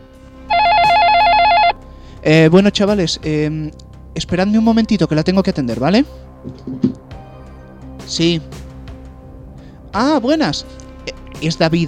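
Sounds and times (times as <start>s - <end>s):
telephone ringing with electronic trill: 0.5s - 1.8s
speech: 2.2s - 6.9s, 8.1s - 8.6s, 10.0s - 11.8s.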